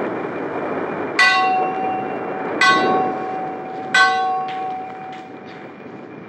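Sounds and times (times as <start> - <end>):
constant low rumble: 0.0 - 6.2
large ship's fog bell ringing on the mast: 1.2 - 5.9.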